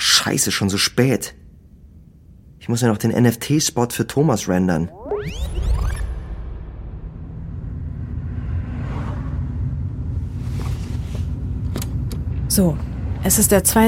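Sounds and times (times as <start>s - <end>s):
speech: 0.2s - 1.5s, 2.7s - 5.6s, 12.6s - 13.8s
soft whooshes of passing air or traffic: 6.4s - 13.3s
low engine rumble inside a moving car: 7.0s - 13.8s
road noise from inside a moving car: 7.1s - 13.8s.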